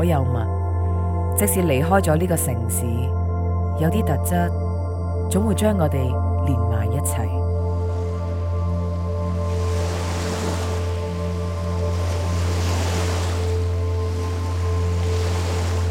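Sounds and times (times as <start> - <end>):
speech: 0.0 - 0.6, 1.4 - 3.2, 3.8 - 4.6, 5.3 - 7.4
ocean waves breaking: 7.7 - 15.8.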